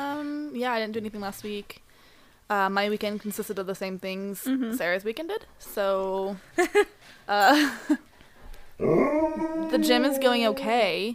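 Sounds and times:
speech: 0.6s - 1.9s, 2.5s - 8.1s, 8.8s - 11.1s
dog howling: 8.8s - 11.0s.

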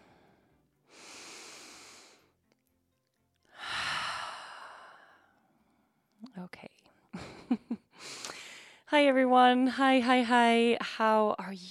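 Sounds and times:
person taking a deep breath: 0.0s - 2.3s, 3.5s - 5.4s, 8.0s - 8.8s
speech: 8.9s - 11.6s.

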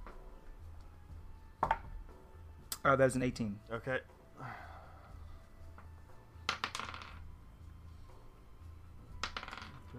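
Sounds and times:
speech: 2.8s - 4.8s
dice rattling across a tabletop: 6.5s - 7.3s, 9.1s - 9.9s.

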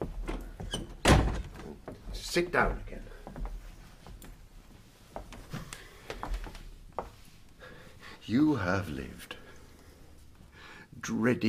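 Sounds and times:
door hinges creaking: 0.1s - 1.9s
door closing thud: 0.7s - 1.8s
speech: 2.3s - 2.9s, 8.3s - 9.4s, 11.0s - 11.4s.

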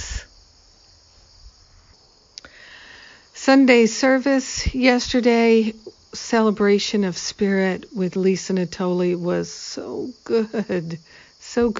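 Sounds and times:
outdoor chorus of crickets chirping: 0.0s - 11.7s
speech: 3.4s - 11.7s.

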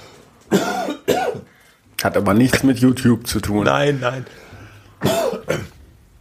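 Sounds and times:
faint hum: 0.0s - 6.1s
speech: 0.5s - 0.7s, 2.0s - 5.2s
person clearing throat: 0.5s - 1.5s, 5.0s - 5.8s
person coughing: 0.5s - 1.5s, 5.0s - 5.8s.

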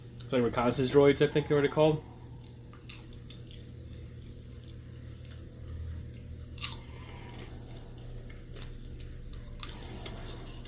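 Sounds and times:
steady low hum: 0.0s - 10.6s
speech: 0.3s - 2.1s
crunchy chewing of popcorn: 2.3s - 10.6s.

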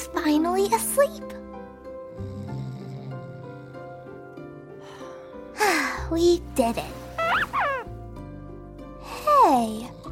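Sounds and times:
speech: 0.2s - 1.4s, 6.1s - 7.0s
stuffed squeaky toy squeaking: 7.2s - 7.9s.

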